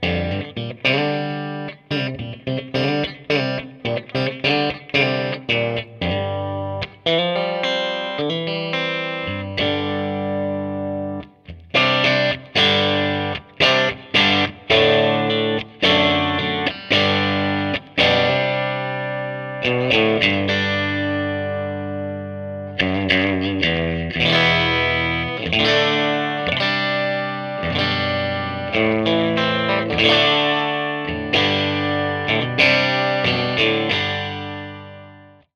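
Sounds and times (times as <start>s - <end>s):
crunchy electric guitar rhythm through a closed-back 4x12 cabinet: 0.0s - 35.5s.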